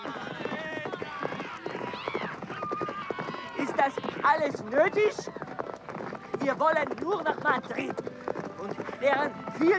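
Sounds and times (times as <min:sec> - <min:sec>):
excited shouting voices: 0:00.0 - 0:05.4
hoofbeats of horses riding off in a hurry: 0:00.0 - 0:09.7
speech: 0:03.8 - 0:05.4, 0:06.4 - 0:09.7.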